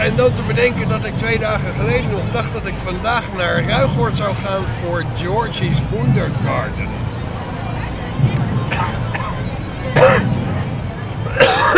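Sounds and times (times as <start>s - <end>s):
crowd chatter at a Pride walk: 0.0s - 11.7s
speech: 0.1s - 7.0s
person coughing at a Pride walk: 10.0s - 10.3s, 11.3s - 11.7s.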